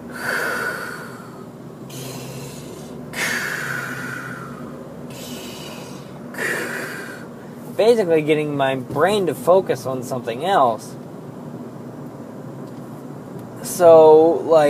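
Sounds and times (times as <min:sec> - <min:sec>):
heavy rhythmic Lamaze breathing into the microphone: 0:00.0 - 0:07.7
speech: 0:07.8 - 0:11.0, 0:13.8 - 0:14.6.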